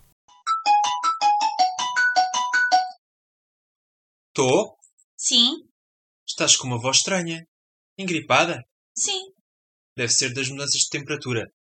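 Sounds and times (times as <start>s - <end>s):
mobile phone ringing with electronic melody: 0.4s - 3.0s
speech: 4.4s - 5.7s, 6.3s - 9.4s, 10.0s - 11.6s.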